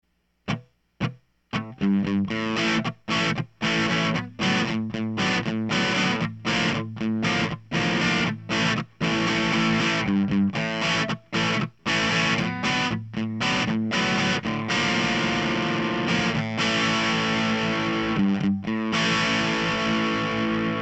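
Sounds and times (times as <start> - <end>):
distorted guitar through V63M microphone: 0.5 - 20.8.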